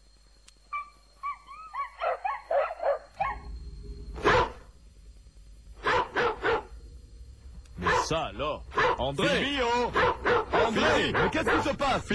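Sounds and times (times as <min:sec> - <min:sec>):
dog barking: 0:00.7 - 0:03.5, 0:04.2 - 0:04.7, 0:05.8 - 0:06.8, 0:07.8 - 0:09.1, 0:09.7 - 0:11.8
dog yelping and yipping: 0:00.7 - 0:03.5, 0:04.2 - 0:04.6, 0:05.8 - 0:06.7, 0:08.7 - 0:09.0, 0:09.6 - 0:11.7
speech: 0:08.1 - 0:12.1.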